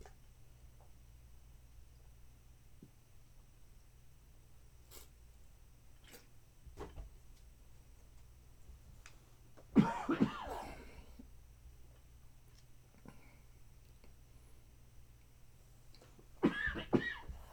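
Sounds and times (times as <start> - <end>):
low hum: 0.0 - 17.5
harsh raspy coughing: 9.8 - 11.0, 16.4 - 17.5.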